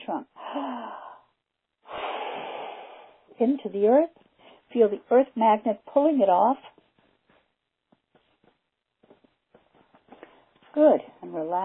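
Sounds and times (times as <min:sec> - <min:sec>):
speech: 0:00.1 - 0:01.0, 0:03.4 - 0:06.7, 0:10.8 - 0:11.6
deep breath in and out during a guided relaxation exercise: 0:00.4 - 0:03.4.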